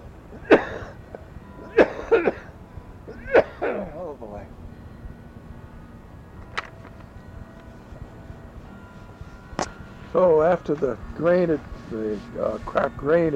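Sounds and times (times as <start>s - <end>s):
person coughing: 0.4s - 1.0s, 1.7s - 2.5s, 3.2s - 4.0s
speech: 10.2s - 13.3s.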